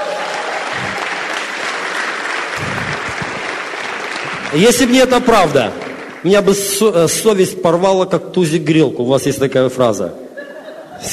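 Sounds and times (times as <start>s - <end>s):
large audience applause: 0.0s - 6.6s
speech: 4.5s - 10.2s
laughter: 10.4s - 11.1s.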